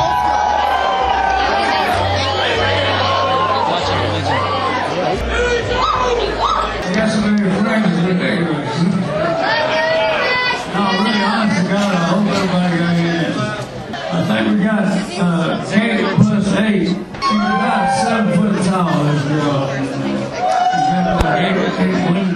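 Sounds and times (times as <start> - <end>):
people laughing and whooping in a packed club: 0.0 - 6.8, 17.2 - 19.2
dense crowd chatter in a packed indoor club: 0.0 - 22.3.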